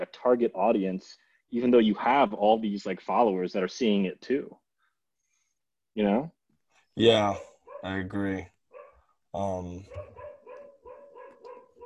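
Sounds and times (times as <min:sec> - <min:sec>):
speech: 0:00.1 - 0:04.6, 0:06.0 - 0:06.4, 0:07.0 - 0:08.5, 0:09.3 - 0:10.2
female dog barking agitatedly: 0:07.3 - 0:08.0, 0:08.7 - 0:09.1, 0:09.9 - 0:11.8.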